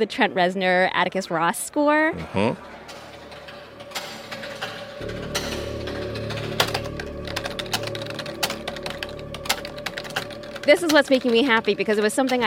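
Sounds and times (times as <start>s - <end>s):
speech: 0.0s - 3.0s, 10.7s - 12.4s
clacky keystrokes on a keyboard in a DVD menu's sounds: 2.9s - 12.4s.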